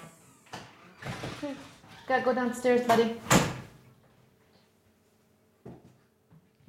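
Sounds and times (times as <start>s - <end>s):
door opening and closing: 0.2s - 2.3s, 2.9s - 3.8s
speech: 1.4s - 3.5s.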